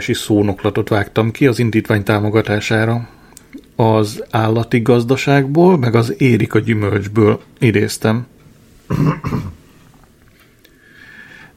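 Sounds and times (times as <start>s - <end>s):
speech: 0.0s - 3.2s, 3.8s - 9.6s
two-part throat clearing: 8.9s - 9.6s.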